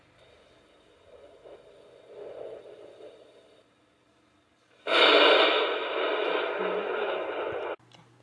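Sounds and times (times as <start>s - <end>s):
thunder: 4.8s - 7.8s.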